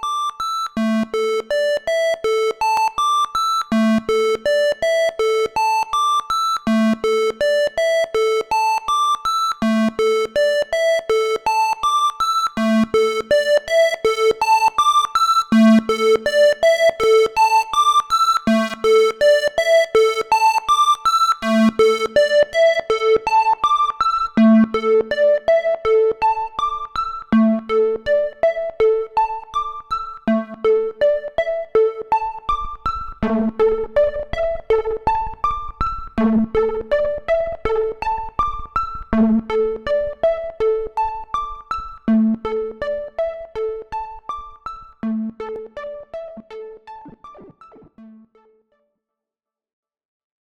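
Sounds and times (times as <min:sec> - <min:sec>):
PWM synth arpeggio: 0:00.1 - 0:48.7.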